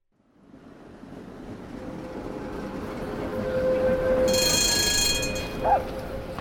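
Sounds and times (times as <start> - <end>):
tram in Salzburg rumbling: 0.1 - 6.3
tram rails squealing: 0.5 - 6.3
high metallic screeching of a tram: 3.6 - 6.3.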